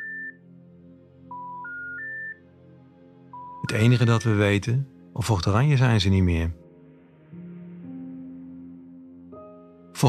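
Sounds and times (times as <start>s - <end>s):
electronic phone keypad beeps: 0.0s - 0.4s, 1.3s - 2.4s, 3.4s - 3.6s
speech: 3.6s - 6.6s.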